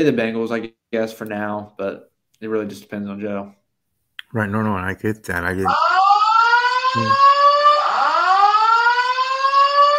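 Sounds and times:
speech: 0.0 - 3.6, 4.3 - 5.9, 6.9 - 7.3
fire alarm wailing: 5.7 - 9.9.

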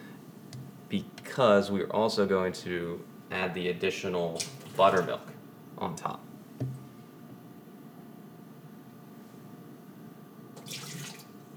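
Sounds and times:
speech: 0.9 - 6.3
water poured from a measuring cup for a batter: 10.6 - 11.4.

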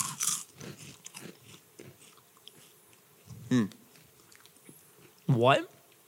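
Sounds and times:
crisp crunchy bites of a snack: 0.0 - 2.8
chewing and mouth noises: 0.0 - 6.0.

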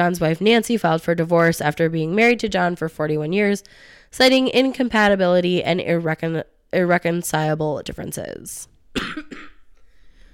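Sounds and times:
speech: 0.0 - 9.5
harsh coughs: 8.9 - 9.7.

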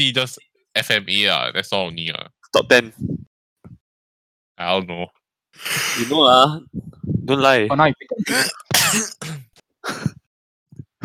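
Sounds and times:
speech: 0.0 - 3.8, 4.6 - 10.2
harsh coughing and throat-clearing: 8.2 - 10.2.

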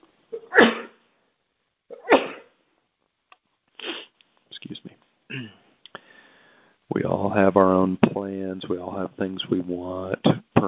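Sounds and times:
person sneezing: 0.4 - 1.0, 1.9 - 2.5, 3.8 - 4.1, 5.3 - 5.7
speech: 4.6 - 5.6, 6.9 - 10.6.

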